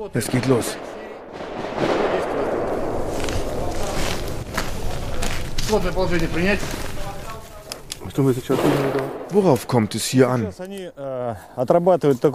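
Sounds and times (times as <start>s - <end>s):
speech: 0.0s - 1.0s, 5.7s - 6.9s, 8.2s - 12.3s
rifle shots fired as controlled double shots in weapons training: 0.0s - 5.4s, 8.5s - 10.6s.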